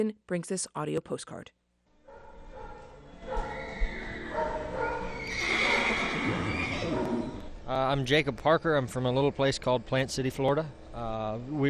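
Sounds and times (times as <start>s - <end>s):
speech: 0.0s - 1.6s, 7.7s - 11.6s
dogs barking: 2.1s - 5.3s, 6.5s - 7.5s
faint barn commotion: 2.1s - 7.5s
horse whinnying among evacuated animals at fairgrounds: 3.3s - 7.5s.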